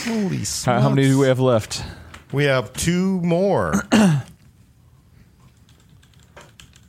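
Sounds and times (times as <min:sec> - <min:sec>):
speech: 0:00.0 - 0:04.3
typing on a mechanical keyboard with Cherry Red linear switches: 0:05.6 - 0:06.8.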